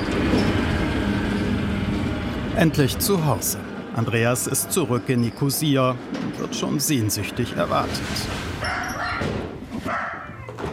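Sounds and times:
steady noise: 0.0s - 10.7s
speech: 2.6s - 9.3s
Jack Russell terrier with an artificial hip barking loudly: 8.6s - 10.4s.

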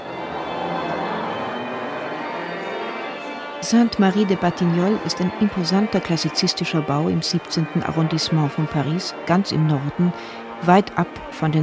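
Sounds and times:
chapel church bells ringing in a continuous peal: 0.0s - 11.6s
speech: 3.6s - 11.6s.

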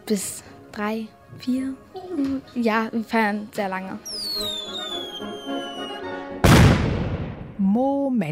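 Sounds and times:
speech: 0.1s - 5.8s, 7.7s - 8.3s
loud booming firework blast: 6.4s - 7.6s.

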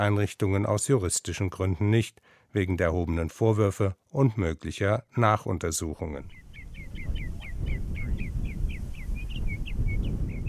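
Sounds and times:
speech: 0.0s - 6.4s
birds chirping outdoors: 6.0s - 10.4s
wind rumbling: 6.3s - 10.4s.

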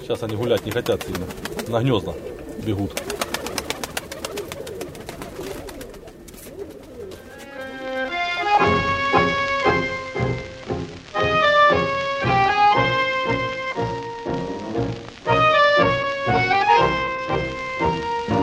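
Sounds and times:
person talking: 0.0s - 3.2s
pigeons cooing: 0.0s - 10.6s
sustained tonal notes: 7.1s - 18.4s.

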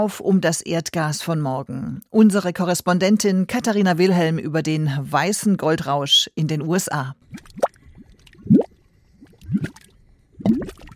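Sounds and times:
speech: 0.0s - 7.7s
thick grey-brown mud plopping in mud volcanoes from hot gases: 7.2s - 10.9s.

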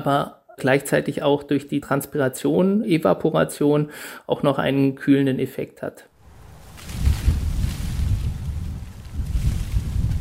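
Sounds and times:
speech: 0.0s - 6.1s
faint rustle: 6.2s - 10.1s
wind gusts roaring across an open rooftop planted with greenery: 6.2s - 10.1s.

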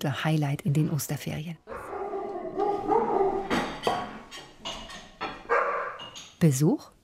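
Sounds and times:
speech: 0.0s - 1.8s, 6.4s - 6.9s
several dogs howling excitedly: 1.7s - 4.2s, 5.5s - 6.0s
several dogs barking excitedly: 1.7s - 4.3s, 5.2s - 6.2s.

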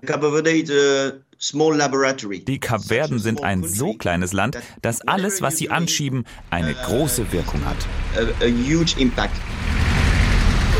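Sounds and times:
speech: 0.0s - 9.8s
dense street traffic in Praia Cape Verde: 6.3s - 10.7s.

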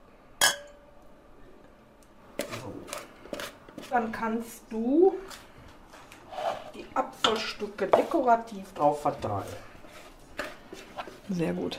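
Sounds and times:
glasses clinking in a toast: 0.4s - 0.9s
speech: 3.9s - 5.4s, 7.0s - 9.7s, 11.3s - 11.7s.

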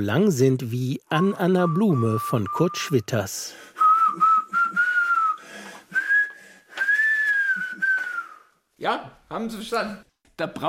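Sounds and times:
speech: 0.0s - 3.8s, 8.8s - 10.6s
person whistling a poem in speech-like phrases: 1.1s - 3.1s, 3.8s - 8.6s.

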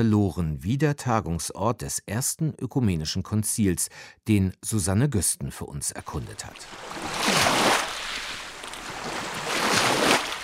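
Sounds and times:
speech: 0.0s - 7.8s
small waves lapping on a pebble lakeshore: 6.5s - 10.4s.

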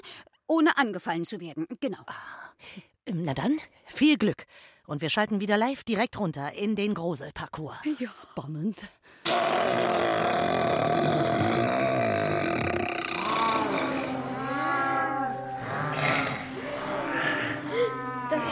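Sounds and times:
speech: 0.0s - 11.2s
bears growling and grunting: 9.3s - 18.4s.

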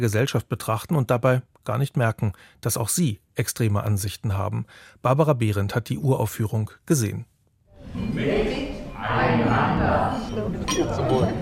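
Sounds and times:
speech: 0.0s - 7.3s, 7.9s - 11.4s
theatre audience chattering and calling out a toast: 7.8s - 11.4s
glasses clinking during a toast: 9.9s - 11.4s.

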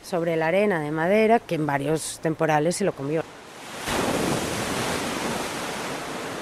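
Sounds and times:
person talking: 0.0s - 3.2s
waves breaking on a sandy beach: 2.9s - 6.3s.

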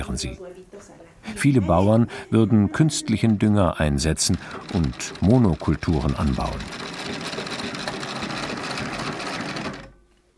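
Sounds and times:
speech: 0.0s - 6.9s
sewing machine embroidering: 4.0s - 10.0s.

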